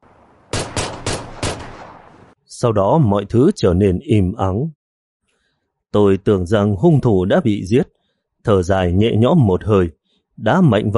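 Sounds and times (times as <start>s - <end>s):
gunshots at night: 0.5s - 2.4s
speech: 2.5s - 4.8s, 5.9s - 10.9s.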